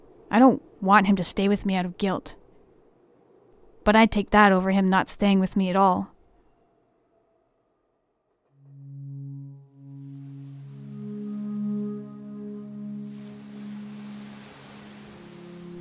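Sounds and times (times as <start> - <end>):
speech: 0.4 - 2.4, 3.9 - 6.1
deep sustained horn-like tones at Brighton Beach at eleven PM: 8.5 - 15.7
soft hiss of waves and surf at Brighton Beach at eleven PM: 10.0 - 15.7.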